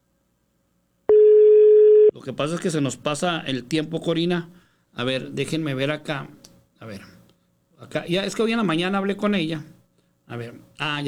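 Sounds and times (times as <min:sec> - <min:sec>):
telephone busy signal on an unanswered call: 0:01.1 - 0:02.1
speech: 0:02.2 - 0:07.1, 0:07.8 - 0:11.0.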